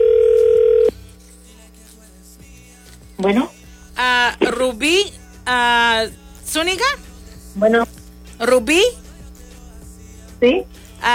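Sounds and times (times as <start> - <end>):
telephone ring tone on an outgoing call: 0.0 - 0.9
faint telephone line hum: 0.0 - 11.1
speech: 3.2 - 3.5, 4.6 - 7.0, 7.6 - 9.0, 10.4 - 11.1.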